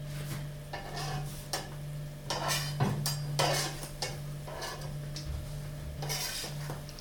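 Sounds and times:
low constant hum: 0:00.0 - 0:06.9
utensil scraping and clinking against the pan: 0:00.7 - 0:05.0, 0:05.9 - 0:06.9.

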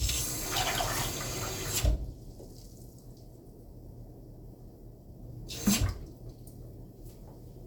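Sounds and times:
water running from a tap into a measuring cup: 0:00.0 - 0:01.9.

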